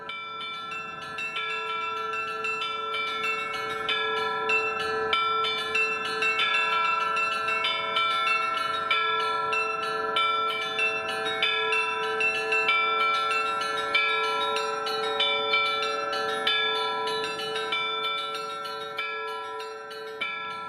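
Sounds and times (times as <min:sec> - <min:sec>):
machine-played carillon in a small Orthodox chapel playing a melody: 0:00.1 - 0:20.6.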